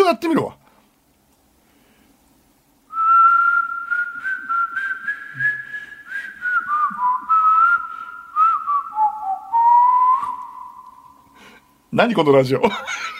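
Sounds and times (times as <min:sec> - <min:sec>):
speech: 0:00.1 - 0:00.6, 0:12.0 - 0:13.0
person whistling a song melody softly at home: 0:02.9 - 0:11.2
laughter: 0:12.6 - 0:13.1.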